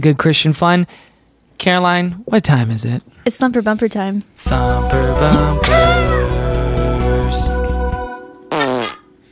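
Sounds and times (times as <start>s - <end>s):
speech: 0.0s - 6.4s, 7.3s - 7.6s
cartoonish stock library fart sound effect: 8.5s - 9.0s.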